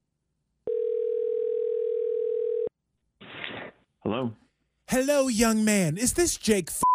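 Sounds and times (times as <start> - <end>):
telephone dial tone: 0.7 - 2.7
speech: 4.1 - 6.8.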